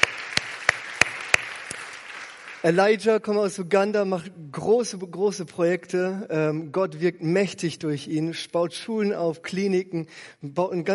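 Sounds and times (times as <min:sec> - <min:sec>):
hand claps welcoming a guest at a gathering: 0:00.0 - 0:02.6
speech: 0:02.6 - 0:10.9.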